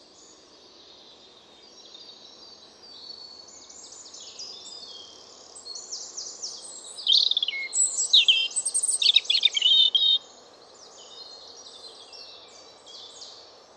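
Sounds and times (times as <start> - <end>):
steady low background hiss: 0.0 - 13.7
European robin singing: 5.8 - 10.2.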